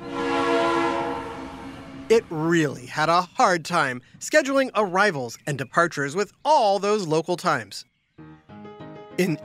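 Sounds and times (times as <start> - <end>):
train horn blaring: 0.0 - 2.3
speech: 2.1 - 7.9, 9.2 - 9.4.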